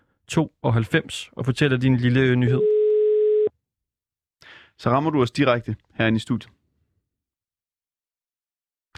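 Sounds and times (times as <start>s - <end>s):
speech: 0.3s - 2.7s, 4.8s - 6.6s
telephone busy signal while calling numbers in Nakskov Denmark: 2.6s - 3.5s.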